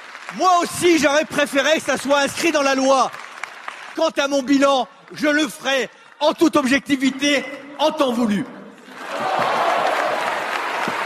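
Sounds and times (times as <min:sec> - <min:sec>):
deputies in parliament applauding in a standing ovation: 0:00.0 - 0:06.2, 0:08.8 - 0:11.0
speech: 0:00.3 - 0:03.2, 0:04.0 - 0:08.6.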